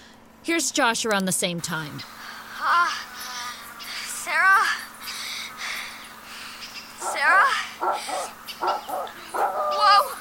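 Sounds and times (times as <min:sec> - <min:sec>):
speech: 0:00.5 - 0:03.1
dog barking: 0:07.0 - 0:10.1.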